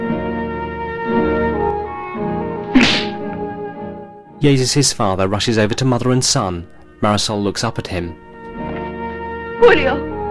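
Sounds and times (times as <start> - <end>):
orchestral music: 0.0 - 10.2
woman slapping a man across the face: 2.7 - 3.4
speech: 4.4 - 8.2, 9.6 - 10.1.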